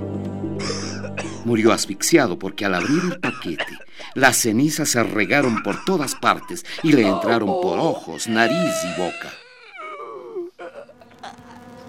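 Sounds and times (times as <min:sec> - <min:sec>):
speech: 0:01.4 - 0:09.4
laughter: 0:02.6 - 0:09.4
swarming mosquitoes and horseflies buzzing: 0:10.8 - 0:11.8.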